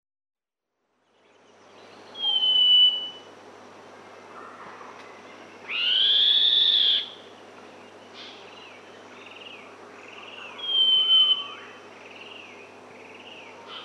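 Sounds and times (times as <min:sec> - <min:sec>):
Northern scrub robin song in Papua New Guinea: 0:01.8 - 0:03.3, 0:05.6 - 0:07.3, 0:08.5 - 0:13.8
Northern scrub robin softer lower whistles and slurred calls: 0:02.1 - 0:03.3, 0:05.7 - 0:07.3, 0:10.6 - 0:11.8.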